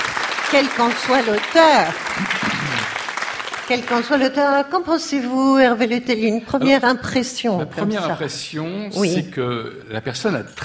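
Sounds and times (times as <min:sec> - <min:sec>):
audience applause: 0:00.0 - 0:04.6
speech: 0:00.5 - 0:02.5, 0:03.7 - 0:10.6.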